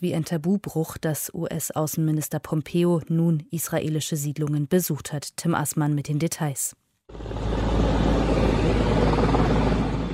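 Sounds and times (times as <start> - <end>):
speech: 0.0 - 8.5
helicopter engine roaring with rhythmic chop: 7.1 - 10.1.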